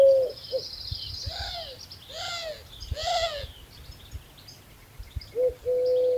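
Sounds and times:
Eurasian collared dove giving low coos: 0.0 - 0.7, 1.3 - 3.5, 5.4 - 6.1
Eurasian collared dove giving excitement cries: 0.0 - 6.1.

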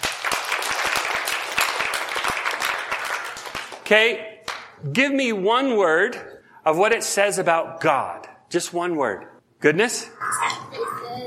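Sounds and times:
audience applauding: 0.0 - 4.6
speech: 3.9 - 10.8.

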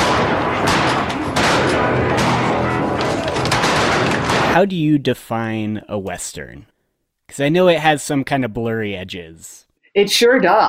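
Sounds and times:
gunfire from people shooting buffalo: 0.0 - 4.7
rumbling background: 0.0 - 4.8
speech: 4.6 - 6.7, 7.3 - 10.6.

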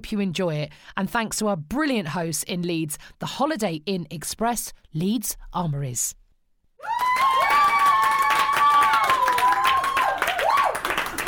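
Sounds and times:
speech: 0.0 - 6.2, 6.8 - 7.1
audience cheering and whoops: 6.8 - 11.2
live audience applause in Leeds: 6.8 - 11.2.

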